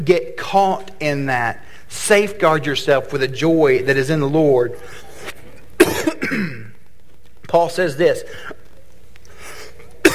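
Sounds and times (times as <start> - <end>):
speech: 0.0 - 5.0, 7.5 - 8.6
person coughing: 5.8 - 6.8, 9.7 - 10.1.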